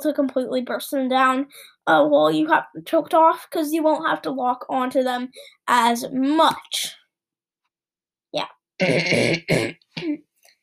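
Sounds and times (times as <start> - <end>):
speech: 0.0 - 7.0, 8.3 - 10.3
harsh cough: 8.8 - 10.2.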